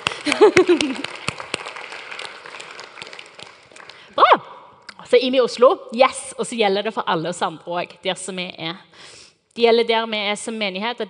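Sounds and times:
laughter: 0:00.0 - 0:01.4
small group clapping: 0:00.0 - 0:04.2
speech: 0:00.3 - 0:01.2, 0:05.1 - 0:11.0.

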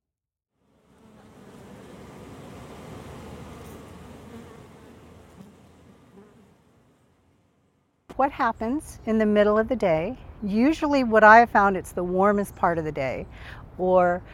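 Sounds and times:
honey bees buzzing at hives in Oakland, California during midday orientation flight: 0:00.6 - 0:07.7
speech: 0:08.2 - 0:14.3.

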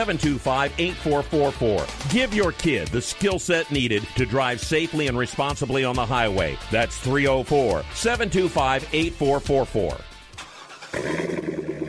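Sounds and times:
speech: 0:00.0 - 0:10.1, 0:10.9 - 0:11.2
Corvette sports car engine roaring: 0:10.2 - 0:11.8.

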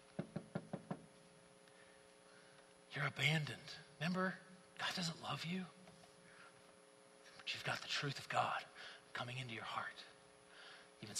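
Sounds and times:
knocking: 0:00.2 - 0:01.1
speech: 0:02.9 - 0:05.8, 0:07.6 - 0:10.1, 0:11.0 - 0:11.1.

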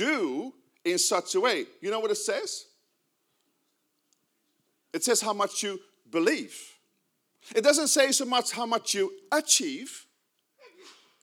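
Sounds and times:
speech: 0:00.0 - 0:02.7, 0:04.9 - 0:06.7, 0:07.4 - 0:10.1
person in the audience sneezing: 0:10.6 - 0:11.2.

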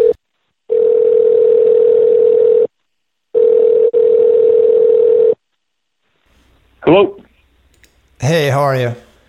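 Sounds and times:
loud electronic telephone ringback tone: 0:00.7 - 0:02.7, 0:03.4 - 0:05.4
speech: 0:07.0 - 0:07.2, 0:08.2 - 0:09.0.

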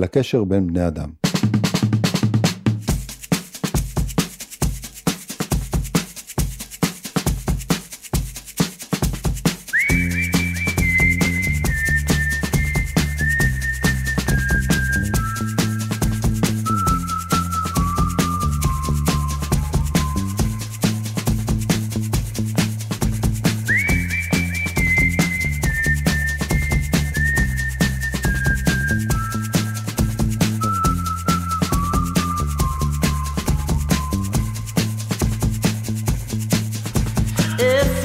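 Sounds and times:
speech: 0:00.0 - 0:01.2
steady rhythmic music backing: 0:01.2 - 0:38.0
person whistling a high melody: 0:09.7 - 0:21.4, 0:23.4 - 0:35.9, 0:37.4 - 0:38.0.

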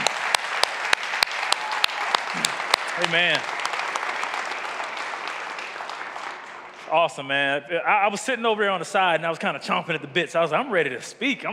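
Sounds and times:
congregation applause: 0:00.0 - 0:07.3
speech: 0:02.4 - 0:03.6, 0:06.9 - 0:11.5.

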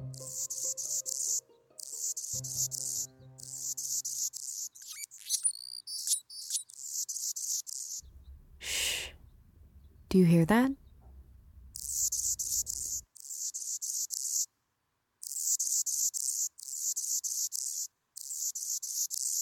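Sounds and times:
Anna's hummingbird song with scratchy buzzing and whistled sweeps: 0:00.1 - 0:08.1, 0:11.7 - 0:14.5, 0:15.3 - 0:19.4
speech: 0:10.2 - 0:10.8.

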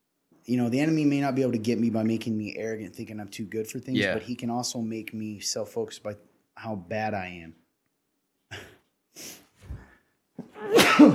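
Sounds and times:
speech: 0:00.4 - 0:07.6, 0:08.5 - 0:09.4
person sneezing: 0:10.4 - 0:11.1.

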